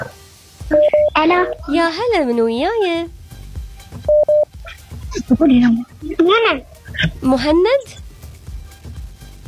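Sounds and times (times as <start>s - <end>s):
short steady telephone tones of a new call being placed: 0.7s - 1.2s
speech: 0.7s - 3.2s, 5.3s - 8.0s.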